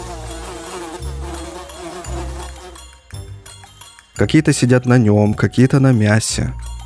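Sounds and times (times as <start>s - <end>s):
many grey flesh flies swarming in a room: 0.0s - 3.1s
speech: 4.2s - 6.7s.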